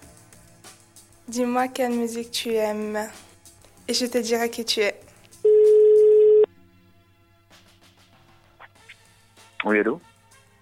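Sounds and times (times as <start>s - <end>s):
speech: 1.3s - 3.2s, 3.9s - 5.0s, 9.7s - 10.1s
telephone ringing tone as call is placed: 5.5s - 6.5s.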